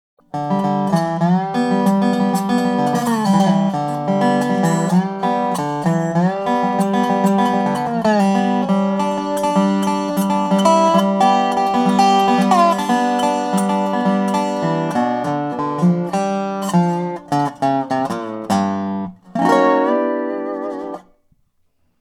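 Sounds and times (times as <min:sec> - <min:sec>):
8 string Dobro: 0:00.2 - 0:21.2.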